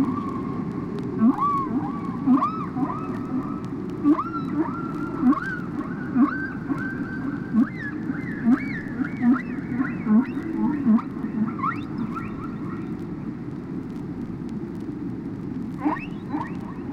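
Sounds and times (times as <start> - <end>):
constant background hiss: 0.0 - 16.9
steady tonal whine: 0.0 - 16.9
whale upswept chirps: 1.2 - 13.0, 15.8 - 16.9.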